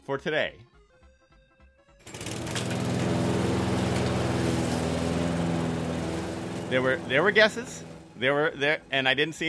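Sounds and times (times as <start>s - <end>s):
speech: 0.0s - 0.7s, 6.7s - 9.4s
lawn mower engine running: 2.1s - 8.6s.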